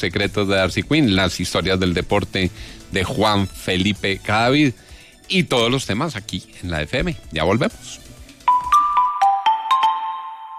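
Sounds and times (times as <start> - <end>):
speech: 0.0 - 8.1
lottery app notification tone on a phone: 8.5 - 10.5.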